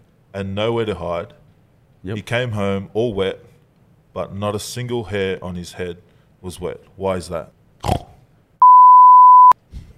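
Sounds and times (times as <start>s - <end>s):
speech: 0.4s - 1.4s, 2.0s - 3.5s, 4.2s - 8.0s
game show buzzer beep: 8.6s - 9.6s.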